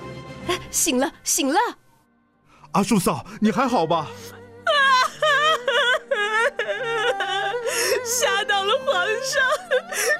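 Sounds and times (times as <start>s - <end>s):
speech: 0.7s - 1.8s, 2.8s - 4.4s, 8.1s - 10.1s
woman crying and wailing: 4.1s - 10.1s.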